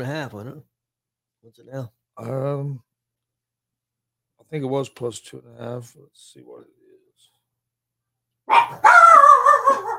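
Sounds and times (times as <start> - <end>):
speech: 0.0 - 0.7, 1.4 - 2.9, 4.4 - 6.8
dog barking and yowling: 8.5 - 9.9.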